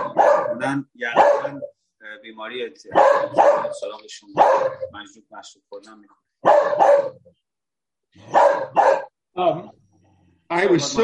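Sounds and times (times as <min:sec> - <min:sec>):
dog barking gruffly: 0:00.0 - 0:01.8, 0:02.9 - 0:05.0, 0:06.4 - 0:07.3, 0:08.2 - 0:09.2
speech: 0:00.6 - 0:07.4, 0:08.1 - 0:09.8, 0:10.5 - 0:11.0.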